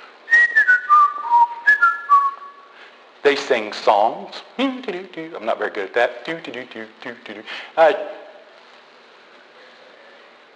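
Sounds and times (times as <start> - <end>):
person whistling a short tune: 0.3 - 2.7
speech: 3.2 - 8.2.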